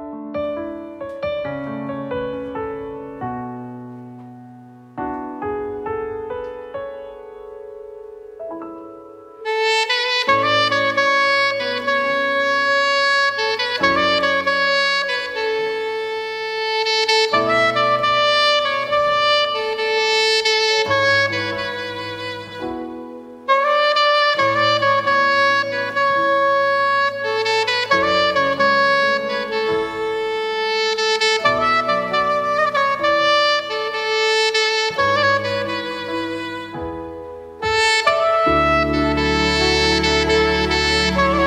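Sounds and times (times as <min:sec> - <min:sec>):
saxophone playing a cover: 0:00.4 - 0:41.4.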